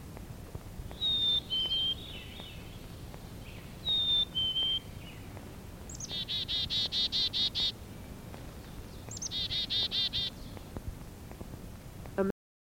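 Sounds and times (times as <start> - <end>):
clear sweet whistled bird notes: 0.9 - 5.3, 5.9 - 7.8, 8.7 - 10.7
chickadee calling chickadee-dee-dee: 0.9 - 10.8.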